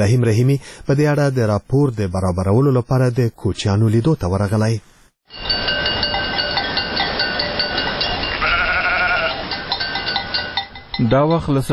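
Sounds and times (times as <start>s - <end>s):
speech: 0.0s - 5.8s, 11.0s - 11.7s
clanking bells: 5.3s - 11.7s
herd of sheep and goats bleating: 8.2s - 9.5s.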